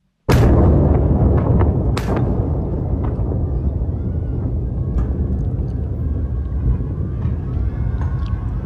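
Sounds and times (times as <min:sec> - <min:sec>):
heavy explosion blasts: 0:00.3 - 0:08.6
loud continuous low rumble: 0:00.3 - 0:08.6.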